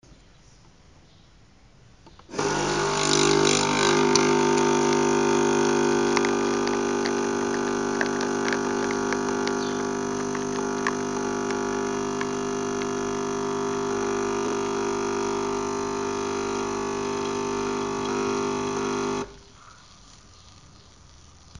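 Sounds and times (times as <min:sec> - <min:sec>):
espresso machine filling a cup: 0:02.3 - 0:19.4.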